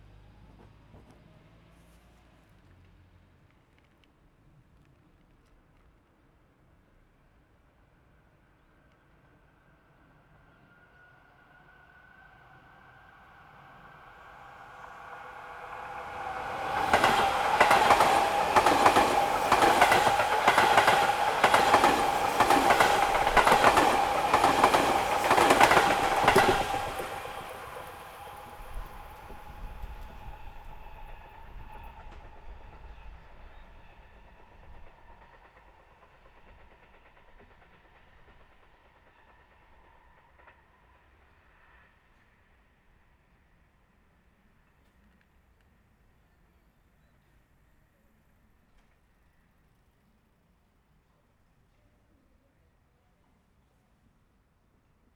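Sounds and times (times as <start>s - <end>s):
up-line electric train passing: 9.2s - 44.2s.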